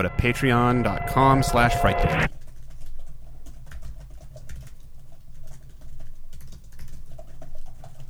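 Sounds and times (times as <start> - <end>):
speech: 0.0 - 2.4
low steady hum: 1.5 - 8.0
loud typing on a computer keyboard: 2.3 - 8.0.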